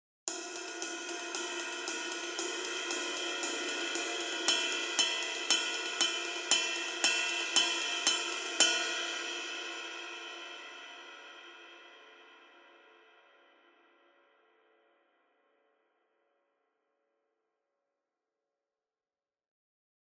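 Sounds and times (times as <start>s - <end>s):
extra thin ride cymbal: 0.3s - 10.9s.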